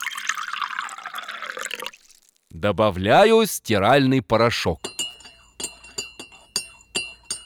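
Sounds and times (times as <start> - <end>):
water pouring into a glass: 0.0 - 2.5
speech: 2.6 - 4.8.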